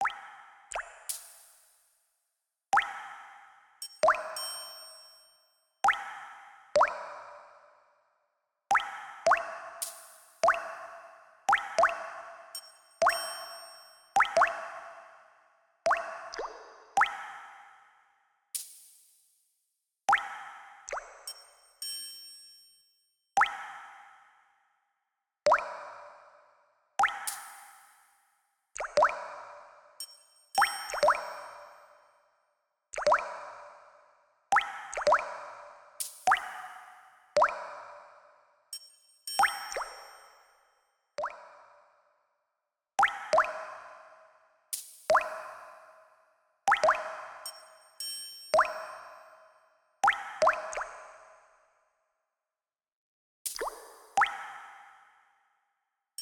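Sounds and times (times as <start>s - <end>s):
water drops with reverb: 0.0s - 1.4s, 2.8s - 5.0s, 5.8s - 7.3s, 8.7s - 10.8s, 11.5s - 14.7s, 15.9s - 17.6s, 20.1s - 22.2s, 23.4s - 24.0s, 25.5s - 25.9s, 27.0s - 27.8s, 28.8s - 31.9s, 33.0s - 33.6s, 34.5s - 36.8s, 37.4s - 37.9s, 38.8s - 40.4s, 41.2s - 41.5s, 43.0s - 43.9s, 44.8s - 45.7s, 46.7s - 49.4s, 50.0s - 51.2s, 53.5s - 54.9s.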